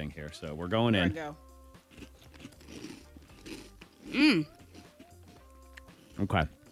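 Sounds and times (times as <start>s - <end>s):
speech: 0.0s - 2.1s, 4.1s - 4.6s, 6.2s - 6.6s
person chewing crisp cereal: 1.8s - 6.7s.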